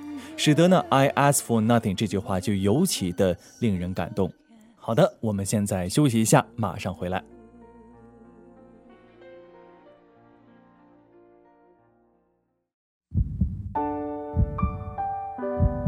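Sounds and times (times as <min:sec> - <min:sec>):
soft tonal music: 0:00.0 - 0:09.7, 0:13.8 - 0:15.8
speech: 0:00.4 - 0:07.4
heartbeat thumps: 0:13.1 - 0:13.8, 0:14.4 - 0:15.0, 0:15.6 - 0:15.8.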